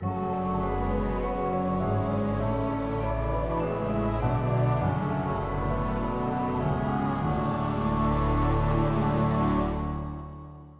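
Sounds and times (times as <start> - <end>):
orchestral music: 0.0 - 10.7.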